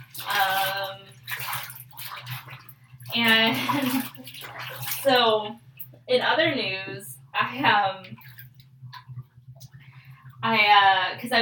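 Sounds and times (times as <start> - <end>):
water splashing as a person washes their armpits: 0.0 - 6.0, 7.7 - 10.0
faint low hum: 0.0 - 11.4
speech: 3.2 - 4.1, 5.0 - 8.0, 10.5 - 11.4.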